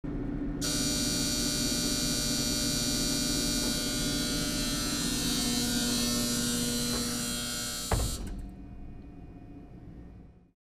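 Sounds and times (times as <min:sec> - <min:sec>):
elevator doors opening and closing: 0:00.6 - 0:09.0.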